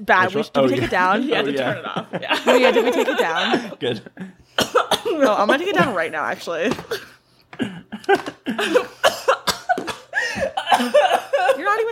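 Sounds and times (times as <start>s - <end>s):
speech: 0.0s - 9.1s
laughter: 0.7s - 4.4s
person coughing after inhaling a graham cracker: 4.5s - 6.0s, 6.7s - 11.9s.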